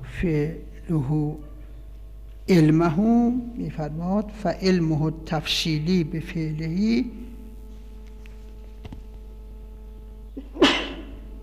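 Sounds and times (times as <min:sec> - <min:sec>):
speech: 0:00.2 - 0:01.5, 0:02.4 - 0:07.3
sneeze: 0:10.5 - 0:11.1.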